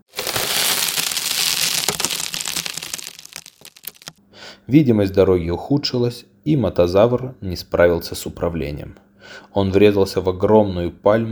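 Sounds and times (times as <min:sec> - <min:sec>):
car windshield glass cracking after a coconut hits it: 0:00.1 - 0:04.2
speech: 0:04.7 - 0:11.3.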